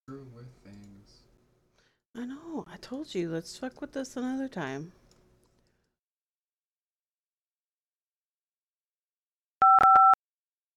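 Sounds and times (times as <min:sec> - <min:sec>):
speech: 0:02.2 - 0:05.0
two-pitch telephone line tone on a call to a hotel: 0:09.6 - 0:10.2.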